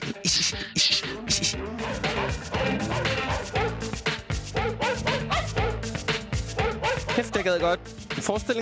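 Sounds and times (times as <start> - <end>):
full loud music track: 0.0 - 8.6
speech: 0.2 - 1.1, 7.4 - 8.6
dog barks pitched into a melody: 1.8 - 3.9, 4.6 - 5.9, 6.6 - 7.5.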